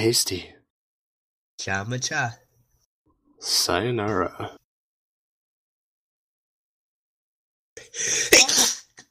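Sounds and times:
speech: 0:00.0 - 0:00.6, 0:01.6 - 0:02.4, 0:03.4 - 0:04.6, 0:07.9 - 0:08.6
sneeze: 0:08.2 - 0:09.0.

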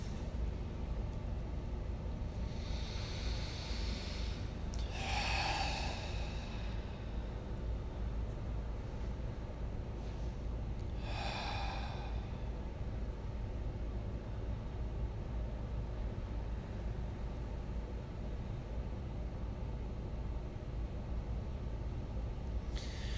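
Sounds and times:
low steady hum: 0:00.0 - 0:23.1
deep breaths in through the nose and out through the mouth: 0:02.3 - 0:07.8, 0:10.0 - 0:12.7, 0:22.7 - 0:23.1.

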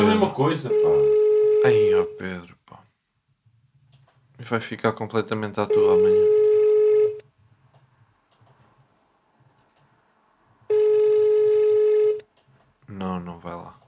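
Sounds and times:
telephone ringing with a steady electronic tone: 0:00.0 - 0:02.2, 0:05.7 - 0:07.2, 0:10.7 - 0:12.3
speech: 0:00.2 - 0:02.6, 0:04.4 - 0:06.5, 0:13.0 - 0:13.8.

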